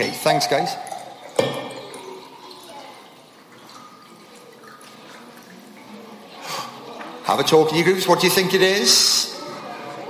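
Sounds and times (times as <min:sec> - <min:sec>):
speech: 0:00.0 - 0:01.5, 0:07.3 - 0:09.3
water pouring into a glass: 0:00.0 - 0:07.3.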